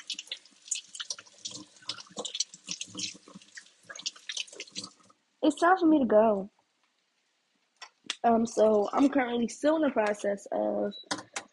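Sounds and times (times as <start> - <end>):
running tap water while washing hands: 0.0 - 5.2
water splashes and drips: 0.0 - 5.8
speech: 5.4 - 6.6, 8.2 - 11.2.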